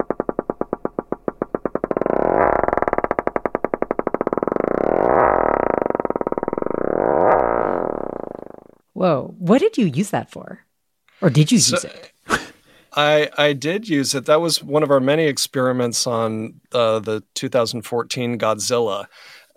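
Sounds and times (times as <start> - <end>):
plastic knife and straw scraped on rubber slowed to deep drone: 0.1 - 8.7
speech: 9.0 - 10.7, 11.2 - 12.1, 12.9 - 19.4.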